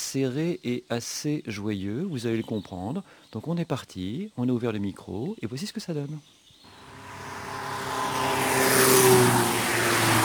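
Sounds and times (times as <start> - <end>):
speech: 0.1 - 6.4
car engine humming past on a road: 6.7 - 10.2
broad whoosh of tyres: 6.8 - 10.2.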